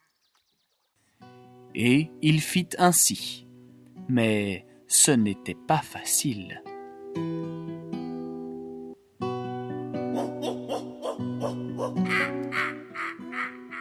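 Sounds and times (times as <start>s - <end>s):
music: 1.1s - 13.7s
speech: 1.7s - 3.4s, 4.1s - 7.5s
crow-like cawing calls of wild birds: 10.2s - 13.7s.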